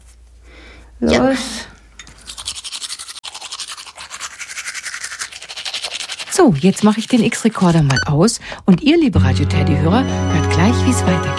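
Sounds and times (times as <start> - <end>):
speech: 1.0 - 1.7, 6.4 - 11.3
teeth being brushed with a toothbrush and toothpaste: 2.2 - 7.9.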